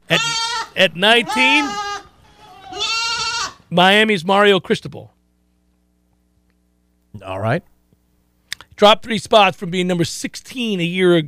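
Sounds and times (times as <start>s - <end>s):
goat bleating: 0.0s - 3.7s
speech: 0.1s - 1.8s, 3.7s - 5.1s, 7.1s - 7.7s, 8.8s - 11.2s.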